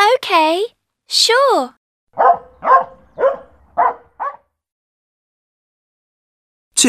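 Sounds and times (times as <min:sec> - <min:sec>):
speech: 0:00.3 - 0:02.4
dog barking: 0:02.2 - 0:04.5.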